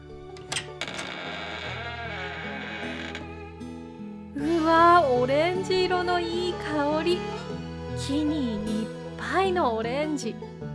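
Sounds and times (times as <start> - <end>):
sharp latch clicks: 0.3 - 3.4
door creaking open with a groaning squeak: 0.3 - 3.9
speech: 5.1 - 7.4, 8.0 - 10.6.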